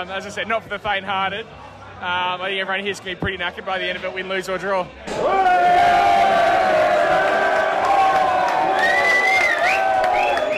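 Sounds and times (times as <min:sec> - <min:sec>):
speech: 0:00.0 - 0:06.1
crowd booing at a match on a TV screen: 0:05.1 - 0:10.5.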